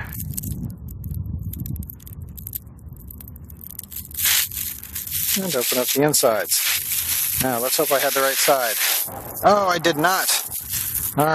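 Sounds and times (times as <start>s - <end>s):
tearing a piece off by hand: 3.7s - 11.3s
speech: 5.4s - 10.4s, 11.2s - 11.3s.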